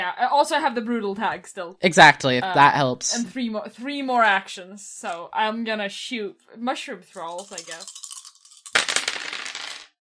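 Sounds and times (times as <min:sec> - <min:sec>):
speech: 0:00.1 - 0:08.0
handful of dice clattering across a hard tabletop: 0:07.2 - 0:10.0.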